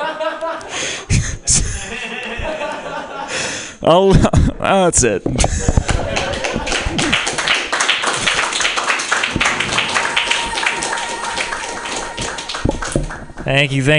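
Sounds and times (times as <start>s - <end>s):
laughter: 0.0s - 3.5s, 5.4s - 7.5s, 9.3s - 13.0s
speech: 3.9s - 5.6s, 13.5s - 13.9s
audience applauding after a comedy set: 5.8s - 13.8s
crowd voices: 9.3s - 13.8s.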